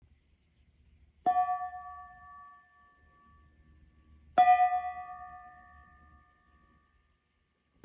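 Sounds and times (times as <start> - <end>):
15cm earth gong: 1.3 - 7.0.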